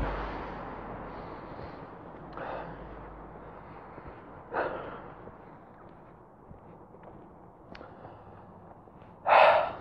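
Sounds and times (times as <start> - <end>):
heavy breathing into microphone: 0.2 - 6.1, 7.7 - 9.7
sharp gasp: 9.3 - 9.7.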